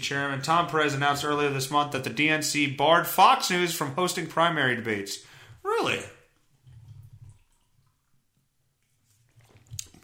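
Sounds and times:
speech: 0.0s - 6.2s
person gulping down a drink of beer: 6.0s - 10.0s.

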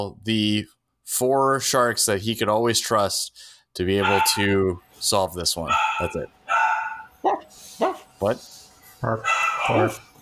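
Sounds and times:
speech: 0.0s - 6.6s, 7.2s - 10.1s
dogs barking: 4.0s - 4.6s, 5.6s - 8.2s, 9.1s - 10.2s.

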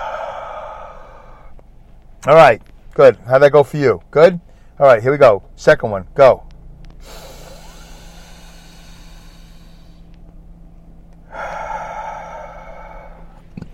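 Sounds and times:
long noisy inhale: 0.0s - 1.6s, 4.5s - 4.8s, 7.0s - 10.2s, 11.2s - 13.7s
loud rushing exhale: 0.0s - 1.6s, 7.0s - 10.1s, 11.2s - 13.5s
speech: 2.2s - 6.4s, 7.0s - 7.3s.

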